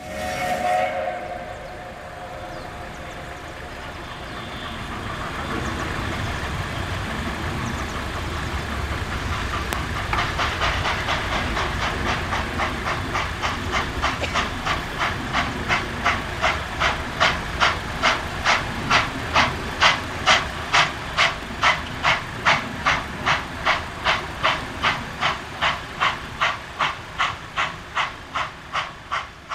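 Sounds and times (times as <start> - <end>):
steam train whistle: 0.0 - 5.4
steam hissing: 0.0 - 29.5
steam train chuffing: 0.0 - 29.5.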